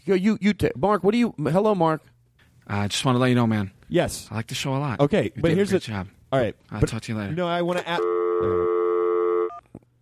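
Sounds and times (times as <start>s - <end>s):
speech: 0.0s - 2.1s, 2.7s - 8.7s
electronic telephone line tone on a landline call during redialing: 8.0s - 9.7s.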